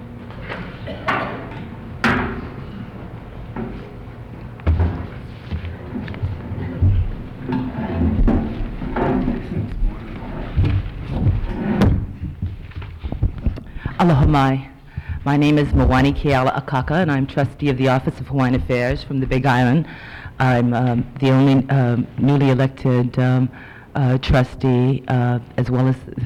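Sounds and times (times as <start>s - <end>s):
busy room background: 0.0s - 26.2s
chair dragged and shifted with scrapes, bumps and knocks: 4.8s - 13.6s
speech: 14.0s - 26.2s.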